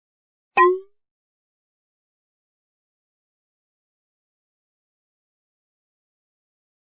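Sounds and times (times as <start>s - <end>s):
interface tooltip sound: 0.6s - 0.9s.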